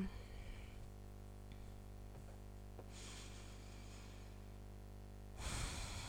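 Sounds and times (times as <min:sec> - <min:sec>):
slow deliberate breathing: 0:00.0 - 0:01.7, 0:02.8 - 0:04.6, 0:05.4 - 0:06.0
steady low electrical hum: 0:00.0 - 0:06.0.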